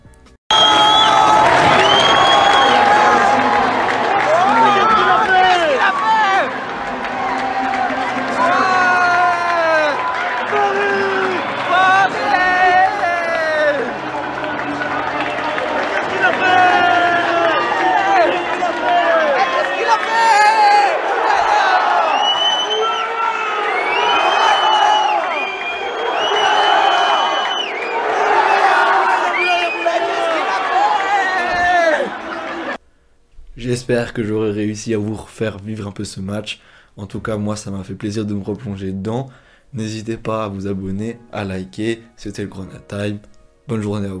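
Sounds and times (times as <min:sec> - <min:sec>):
packed stadium crowd cheering and shouting in celebration after a goal: 0:00.5 - 0:32.8
speech: 0:33.9 - 0:44.1.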